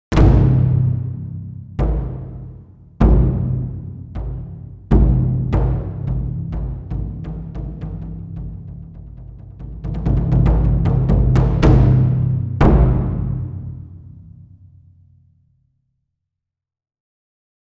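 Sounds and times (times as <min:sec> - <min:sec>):
odaiko drum: 0:00.1 - 0:15.0.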